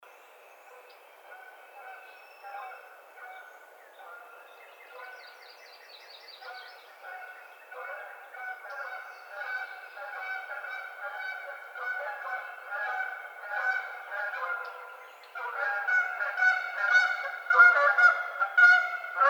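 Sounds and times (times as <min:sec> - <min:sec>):
Canada goose honking: 0:06.4 - 0:19.2.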